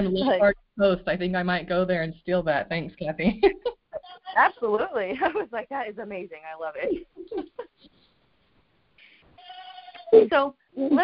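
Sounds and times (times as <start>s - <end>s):
speech: 0.0s - 7.6s, 10.1s - 11.0s
goat bleating: 9.4s - 10.2s.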